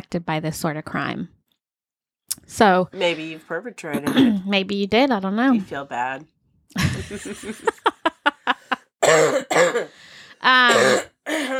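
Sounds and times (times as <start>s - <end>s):
speech: 0.1s - 1.4s, 2.4s - 7.9s, 9.1s - 11.5s
person with a month-long cough coughing: 3.9s - 4.5s, 9.0s - 10.0s, 10.6s - 11.5s
laughter: 6.8s - 8.9s
person clearing throat: 9.0s - 9.9s, 10.7s - 11.5s.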